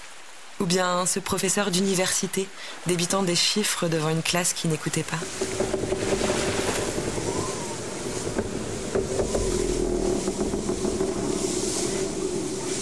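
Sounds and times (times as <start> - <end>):
broad hissing noise: 0.0 - 12.8
speech: 0.7 - 6.5
wind rushing around a vessel at sea: 5.2 - 12.8.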